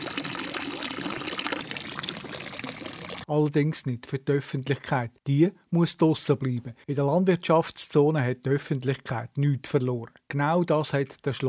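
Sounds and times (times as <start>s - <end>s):
fountain splashing in a castle courtyard: 0.0s - 3.3s
speech: 3.3s - 11.4s.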